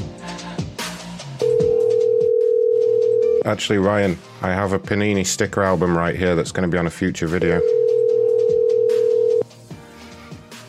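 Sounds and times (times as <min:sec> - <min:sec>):
loud steady telephone dial tone from a customer service call: 0:01.4 - 0:03.4, 0:07.6 - 0:09.4
speech: 0:03.4 - 0:07.8.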